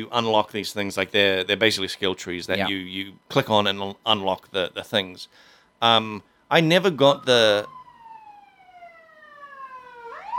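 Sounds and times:
speech: 0.0 - 7.8
ambulance siren wailing as it passes: 6.7 - 10.3.

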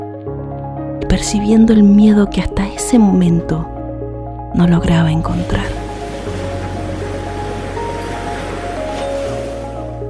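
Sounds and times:
speech: 1.2 - 3.7, 4.5 - 5.8
ocean waves crashing against the edge of a cliff: 4.6 - 10.0.

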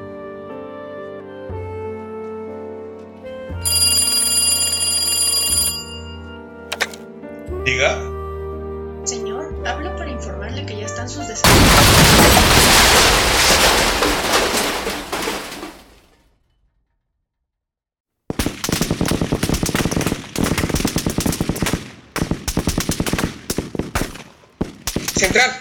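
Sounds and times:
speech: 7.7 - 8.1, 10.6 - 12.2
bomb explosion at a grand hotel: 11.5 - 16.0
rapid crackling bursts: 18.3 - 25.5.

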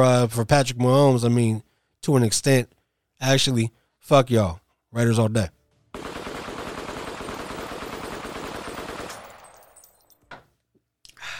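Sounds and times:
speech: 0.0 - 5.6
rapid automatic gunfire sound effect: 5.9 - 9.8.

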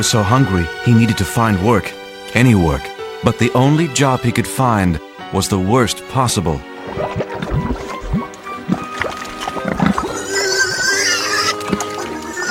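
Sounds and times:
speech: 0.0 - 7.2
group of pigs grunting, snorting and squealing while feeding: 8.7 - 12.4.

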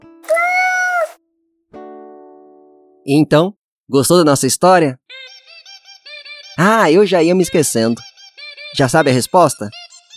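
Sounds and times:
cat meowing: 0.3 - 1.2
speech: 3.0 - 5.2, 6.6 - 8.1, 8.7 - 10.1.

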